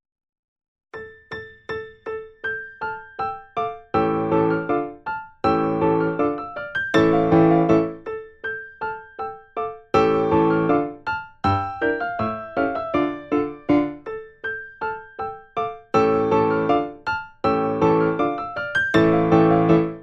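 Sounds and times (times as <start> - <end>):
four-hand piano practice piece: 1.0 - 20.0.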